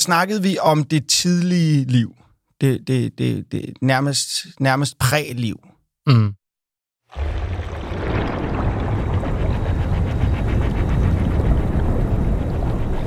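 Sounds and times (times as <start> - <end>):
speech: 0.0 - 6.4, 7.1 - 7.4
murky water sloshing and gurgling around a submarine in the sea: 7.0 - 13.0
deep steady underwater rumble inside a submarine: 7.2 - 13.0.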